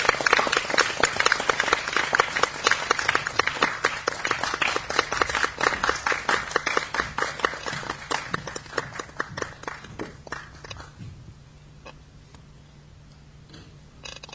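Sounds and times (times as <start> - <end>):
crowd applauding with overlapping hand claps: 0.0 - 11.0.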